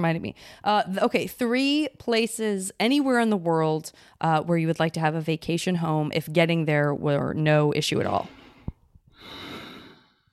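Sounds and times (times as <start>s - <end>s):
speech: 0.0s - 8.4s
long heavy exhale: 8.3s - 10.3s.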